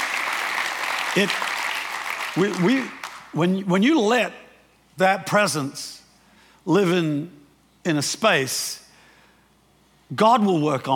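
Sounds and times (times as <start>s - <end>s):
church audience applause: 0.0s - 3.3s
speech: 1.2s - 1.5s, 2.4s - 4.4s, 5.0s - 6.0s, 6.6s - 8.8s, 10.1s - 10.9s.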